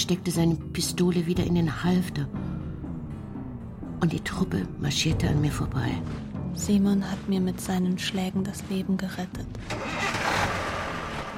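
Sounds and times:
speech: 0:00.1 - 0:02.4, 0:04.0 - 0:10.4
truck engine starting, revving and driving off: 0:09.4 - 0:11.3.

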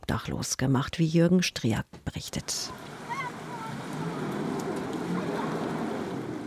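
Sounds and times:
speech: 0:00.1 - 0:02.9
floodwater rushing: 0:02.4 - 0:06.4
children's voices calling and shouting: 0:02.7 - 0:06.4.

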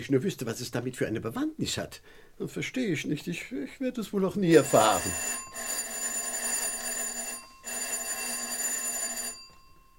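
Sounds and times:
speech: 0:00.0 - 0:05.7
doorbell ringing at the front door of a house: 0:04.5 - 0:09.9.

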